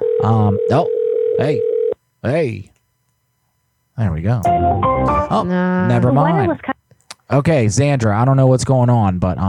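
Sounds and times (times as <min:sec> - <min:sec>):
steady phone line tone from a disconnected number: 0:00.0 - 0:02.0
speech: 0:00.2 - 0:02.7, 0:04.0 - 0:06.7, 0:07.3 - 0:09.4.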